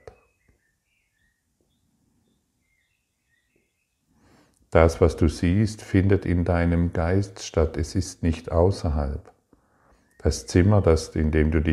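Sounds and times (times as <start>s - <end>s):
faint bird chirps: 0.0s - 4.6s, 9.5s - 11.6s
speech: 4.7s - 9.4s, 10.2s - 11.7s.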